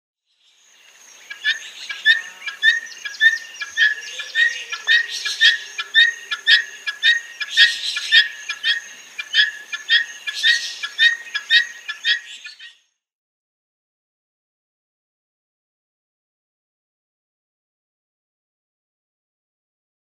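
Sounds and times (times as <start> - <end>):
male Helmeted Guineafowl display calls: 1.1 - 12.8.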